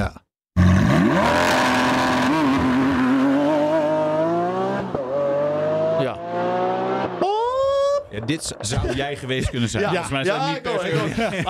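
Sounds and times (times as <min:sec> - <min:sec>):
Lamborghini Aventador SVJ 6.5-litre V12 engine revving through gears: 0:00.6 - 0:07.2
speech: 0:08.3 - 0:11.4
laughter: 0:08.6 - 0:11.4.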